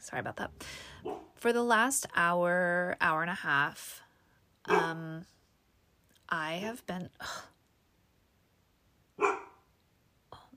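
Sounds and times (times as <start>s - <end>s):
speech: 0.0s - 4.0s, 4.7s - 5.4s, 6.3s - 7.5s
dog barking: 1.0s - 1.3s, 4.7s - 4.9s, 9.2s - 9.6s.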